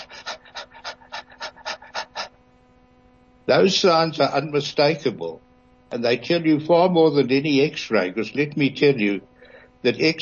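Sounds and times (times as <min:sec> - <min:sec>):
person imitating a dog's rapid shallow panting: 0:00.0 - 0:02.4
speech: 0:03.5 - 0:10.2.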